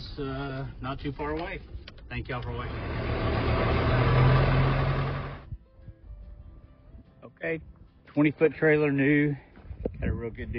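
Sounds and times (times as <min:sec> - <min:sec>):
speech: 0:00.2 - 0:03.4, 0:07.2 - 0:10.5
diesel tractor engine idling while warming up: 0:02.4 - 0:05.4.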